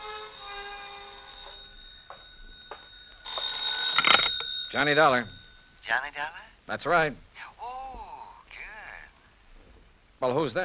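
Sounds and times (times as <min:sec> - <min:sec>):
telephone ringing with electronic trill in an apartment: 0:00.0 - 0:06.4
speech: 0:04.7 - 0:07.5, 0:10.2 - 0:10.6.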